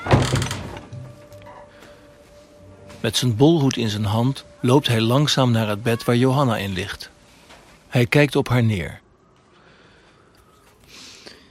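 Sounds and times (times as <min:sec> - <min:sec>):
dull knocking thud and rattle of wooden plank door: 0:00.0 - 0:01.2
rickety wooden plank door opening: 0:00.0 - 0:01.6
speech: 0:03.0 - 0:07.2, 0:07.9 - 0:09.0.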